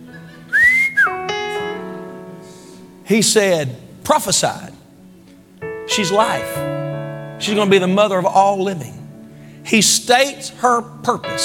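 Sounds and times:
loud wolf whistle at a woman: 0.5 - 1.2
speech: 3.1 - 4.8, 5.9 - 6.7, 7.4 - 9.0, 9.6 - 11.4.

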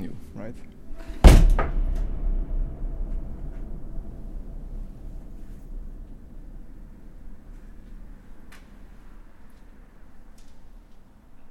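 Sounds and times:
speech: 0.4 - 0.8
heavy door banging open in a water tower: 0.9 - 9.8
long booming reverberation in a water tower: 0.9 - 10.8.

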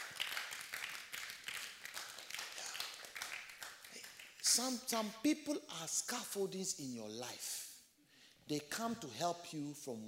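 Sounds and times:
audience clapping: 0.0 - 5.1
speech: 4.6 - 7.6, 8.5 - 10.0.

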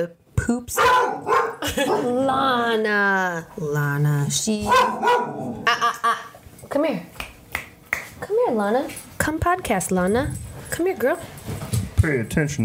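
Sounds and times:
speech: 0.0 - 7.2, 8.2 - 12.6
Doberman-Chihuahua mix dog of about 35 pounds barking: 0.8 - 2.1, 4.6 - 5.6.

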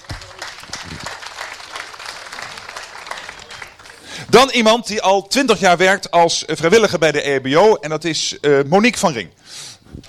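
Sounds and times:
crowd applauding: 0.0 - 4.3
speech: 4.2 - 10.0.

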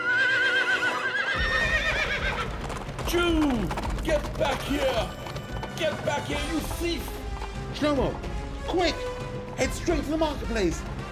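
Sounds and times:
horse whinnying with a wavering trilling call: 0.0 - 6.7
horses neighing: 0.0 - 8.2
horse hooves thudding while setting off: 1.3 - 11.0
speech: 1.4 - 1.6, 3.1 - 5.2, 5.8 - 10.9.

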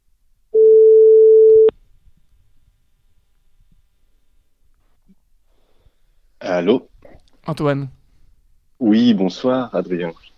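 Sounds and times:
telephone ringback tone on an outgoing call: 0.6 - 1.7
speech: 6.6 - 8.0, 8.8 - 10.3.

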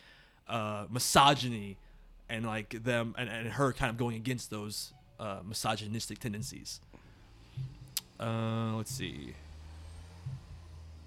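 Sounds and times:
speech: 0.5 - 7.0, 7.6 - 9.4
truck passing by with deep engine rumble: 7.1 - 11.0.

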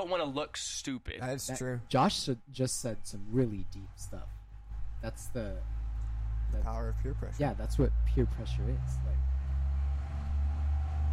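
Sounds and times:
speech: 0.0 - 4.4, 5.0 - 5.8, 6.5 - 9.3
large truck driving by with low-pitched engine rumble: 3.9 - 11.1.

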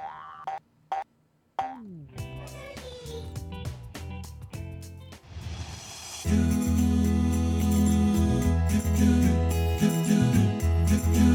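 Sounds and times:
nursery rhyme tune: 6.3 - 11.3.

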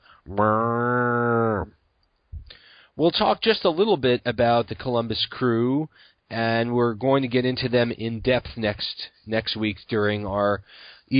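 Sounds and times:
speech: 0.2 - 0.9, 3.0 - 11.1
cow mooing: 0.3 - 1.7.

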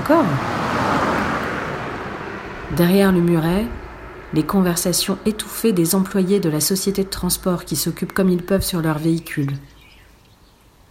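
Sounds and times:
car passing by with tyre and engine roar: 0.0 - 6.8
speech: 0.1 - 1.1, 2.7 - 9.7.

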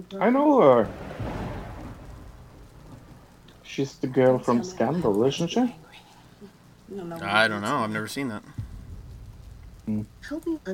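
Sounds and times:
speech: 0.0 - 1.1, 3.7 - 6.0, 6.9 - 8.6, 9.9 - 10.7
steady rain in a movie trailer: 0.0 - 10.7
deep rolling rumble of thunder in a movie trailer: 0.5 - 5.1, 8.5 - 10.7.

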